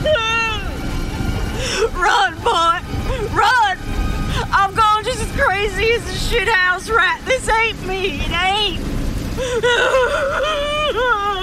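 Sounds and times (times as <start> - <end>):
woman sobbing hard in distress: 0.0 - 0.8, 1.5 - 6.0, 9.3 - 11.4
speech: 6.3 - 11.4.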